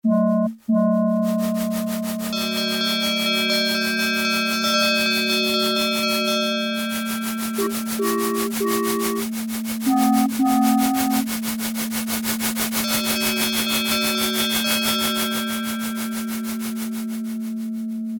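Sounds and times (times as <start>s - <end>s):
Yamaha DX7 synthesizer train sound: 0.0s - 17.9s.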